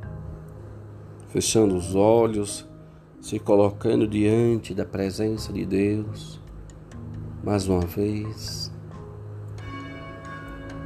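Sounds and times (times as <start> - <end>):
speech: 1.3 - 6.4, 7.4 - 8.8
church bell ringing: 9.6 - 10.8.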